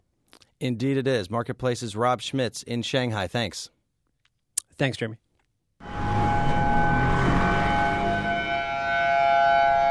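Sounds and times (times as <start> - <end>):
speech: 0.6 - 3.8, 4.8 - 5.2
tsunami warning sirens sounding in Honolulu: 5.8 - 9.9.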